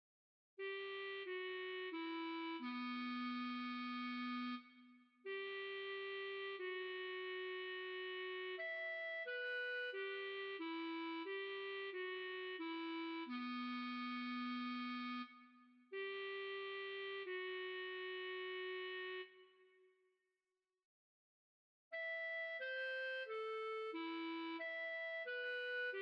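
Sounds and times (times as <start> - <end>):
clarinet: 0.6 - 19.9, 21.9 - 26.0.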